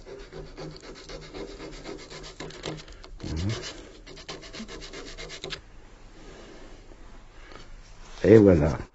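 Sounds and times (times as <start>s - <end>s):
hand sanding a wooden pipe with sandpaper: 0.0s - 5.6s
speech: 8.3s - 8.9s.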